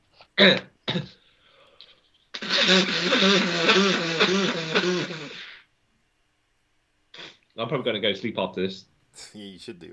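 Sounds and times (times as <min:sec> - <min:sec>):
speech: 0:00.4 - 0:01.1, 0:02.7 - 0:05.0, 0:07.6 - 0:09.9
person blowing nose: 0:02.3 - 0:05.7, 0:07.1 - 0:07.4
short throat-clearing snorts: 0:02.4 - 0:05.6, 0:07.2 - 0:07.4.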